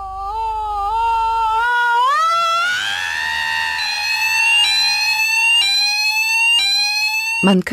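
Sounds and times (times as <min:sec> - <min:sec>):
low hum: 0:00.0 - 0:07.4
smoke detector alarm beeping: 0:03.6 - 0:07.7
speech: 0:07.5 - 0:07.7.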